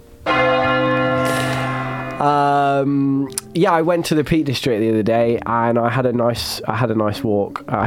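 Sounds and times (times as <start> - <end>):
large bell struck: 0.3 - 4.4
speech: 2.2 - 7.8.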